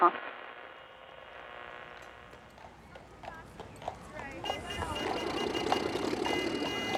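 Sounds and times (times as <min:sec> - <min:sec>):
speech: 0:00.0 - 0:00.3
hooves of horse-drawn carriages clip-clopping: 0:01.9 - 0:06.9
trams: 0:01.9 - 0:06.9.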